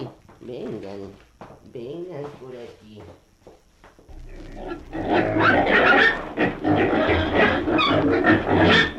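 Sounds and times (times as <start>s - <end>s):
speech: 0.0s - 3.3s
pig grunting and snorting: 4.2s - 8.9s.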